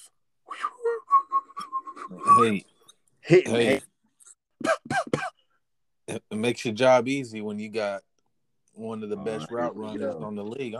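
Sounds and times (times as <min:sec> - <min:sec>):
person whistling short notes imitating a football zipping through the air: 0:00.5 - 0:02.6
speech: 0:02.4 - 0:03.9, 0:06.1 - 0:08.1, 0:08.8 - 0:10.7.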